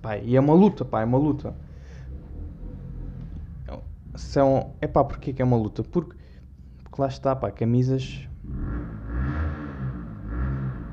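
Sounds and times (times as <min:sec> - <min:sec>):
speech: 0:00.0 - 0:01.7, 0:03.7 - 0:06.2, 0:07.0 - 0:08.7
motorcycle engine passing by outside: 0:01.4 - 0:04.8, 0:08.3 - 0:10.9.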